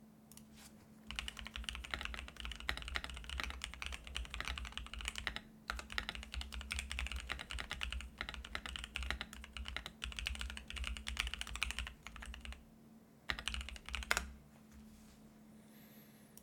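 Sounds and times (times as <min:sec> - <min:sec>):
keyboard typing: 0:01.1 - 0:12.6, 0:13.3 - 0:14.4.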